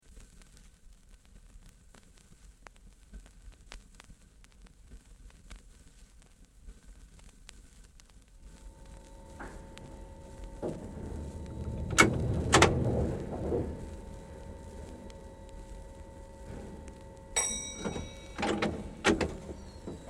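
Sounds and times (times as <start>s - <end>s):
Tube stock train running with stops and starts heard from the cab interior: 8.6s - 20.0s.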